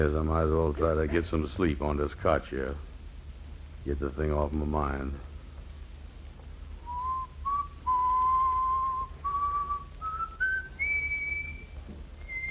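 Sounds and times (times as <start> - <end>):
speech: 0.0 - 2.9, 3.8 - 5.3
faint low hum: 0.0 - 12.4
person whistling a slow wandering tune: 6.9 - 12.4.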